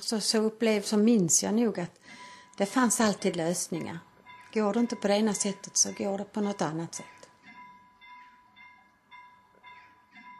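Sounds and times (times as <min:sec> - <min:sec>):
speech: 0:00.0 - 0:02.0, 0:02.6 - 0:07.2
railroad level crossing signal ringing: 0:02.2 - 0:10.3.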